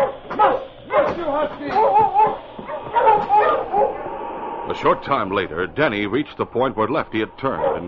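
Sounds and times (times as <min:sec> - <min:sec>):
pack of sled dogs barking and yipping excitedly: 0:00.0 - 0:04.2, 0:07.4 - 0:07.8
speech: 0:01.2 - 0:02.5, 0:04.7 - 0:07.8.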